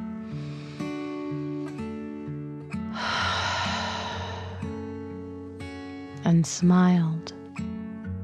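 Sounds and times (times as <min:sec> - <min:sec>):
deep breath in and out: 0:00.2 - 0:01.9, 0:02.9 - 0:05.4
speech: 0:06.3 - 0:07.4.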